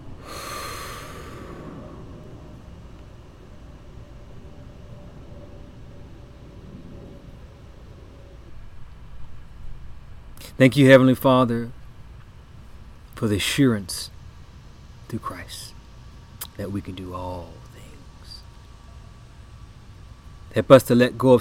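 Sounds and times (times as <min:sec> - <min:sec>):
faint low noise: 0:00.0 - 0:21.3
person breathing in and out during a prayer meditation: 0:00.2 - 0:02.4
speech: 0:10.5 - 0:11.8, 0:13.2 - 0:14.2, 0:15.1 - 0:15.8, 0:16.6 - 0:17.7, 0:20.5 - 0:21.3.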